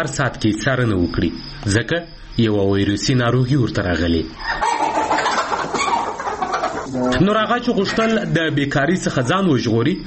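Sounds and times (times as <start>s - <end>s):
speech: 0.0s - 4.7s, 6.9s - 10.0s
chickens clucking on a small family poultry farm: 3.8s - 8.5s.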